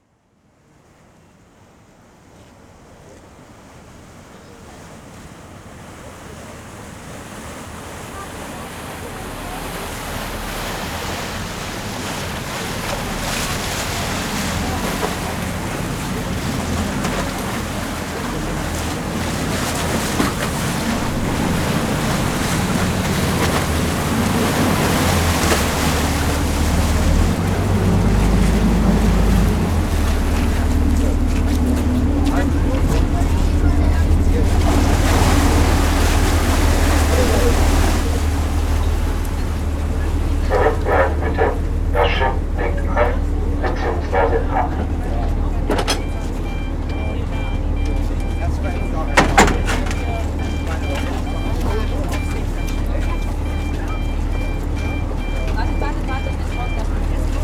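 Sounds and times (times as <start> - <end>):
harbour ambience: 3.9 - 57.4.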